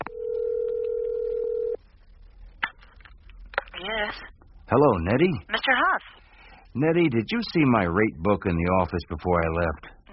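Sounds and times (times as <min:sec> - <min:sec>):
quiet telephone line hiss: 0:00.0 - 0:10.1
telephone electronic ring tone on the other end of a call: 0:00.1 - 0:01.8
speech: 0:04.0 - 0:06.2, 0:06.8 - 0:10.0.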